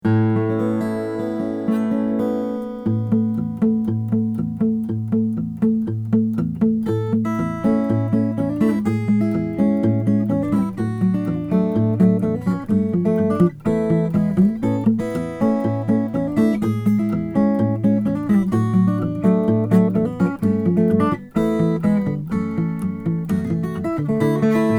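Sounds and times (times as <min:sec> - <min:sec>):
Rainsong graphite WS1000N2 Black Ice guitars playing: 0:00.0 - 0:24.7.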